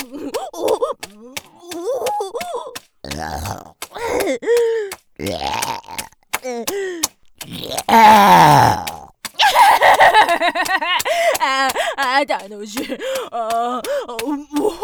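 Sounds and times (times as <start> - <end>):
laughter: 0.0 - 2.8, 9.4 - 14.8
speech: 3.0 - 3.7, 4.3 - 5.8, 7.9 - 8.8, 12.2 - 14.0
loud burps, short and croaky or drawn out and rasping: 5.2 - 6.1, 7.5 - 9.1.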